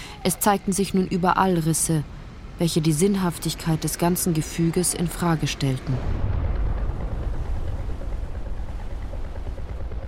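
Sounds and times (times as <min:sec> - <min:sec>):
speech: 0:00.2 - 0:06.4
muffled explosions rumbling: 0:05.9 - 0:10.0.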